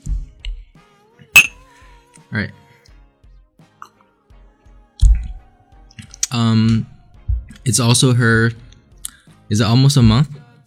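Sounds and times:
glasses clinking in a toast: 0:01.4 - 0:01.6
speech: 0:02.3 - 0:02.6, 0:06.4 - 0:06.9, 0:07.6 - 0:08.6, 0:09.5 - 0:10.4.

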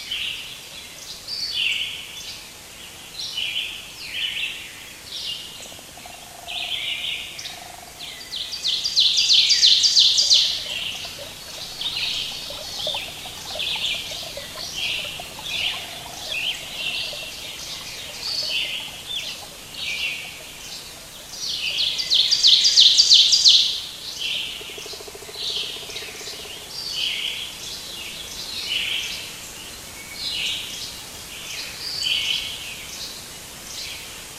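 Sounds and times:
soft background hiss: 0:00.0 - 0:34.3
birds chirping and calling: 0:05.7 - 0:23.8.

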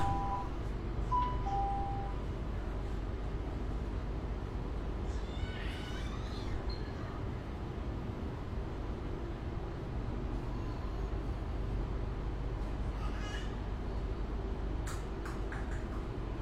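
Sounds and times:
short beeps: 0:00.0 - 0:00.5, 0:01.1 - 0:02.2
heavy low roar of air conditioning in a metro car in Shenzhen: 0:00.0 - 0:16.4.

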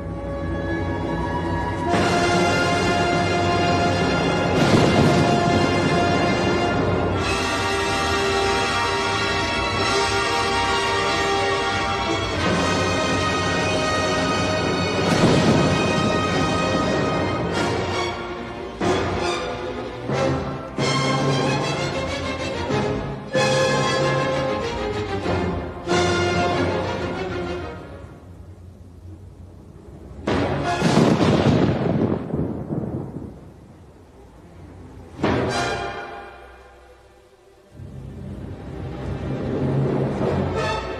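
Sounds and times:
full orchestra playing a turbulent storm passage: 0:00.0 - 0:28.8, 0:29.8 - 0:40.9
crashing drum-like thunder surges: 0:01.9 - 0:08.4, 0:14.3 - 0:18.1, 0:30.0 - 0:34.0.

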